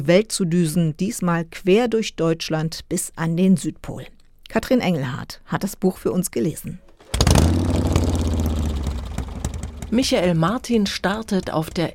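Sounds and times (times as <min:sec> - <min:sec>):
speech: 0:00.0 - 0:07.6, 0:09.9 - 0:11.9
fully loaded touring motorcycle engine running: 0:07.0 - 0:11.9.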